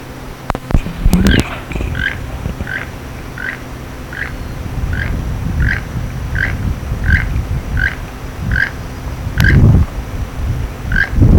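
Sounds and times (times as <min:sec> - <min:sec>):
keel-billed toucan calling in Belize: 0:00.6 - 0:09.6, 0:10.9 - 0:11.2.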